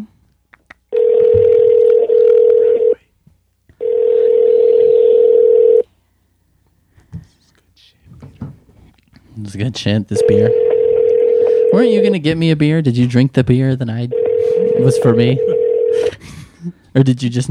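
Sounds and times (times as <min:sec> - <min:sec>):
telephone tone from a phone call being placed: 0:00.9 - 0:03.0, 0:03.8 - 0:05.9, 0:10.2 - 0:12.2, 0:14.1 - 0:16.2
speech: 0:09.5 - 0:10.7, 0:11.7 - 0:15.6, 0:17.0 - 0:17.4.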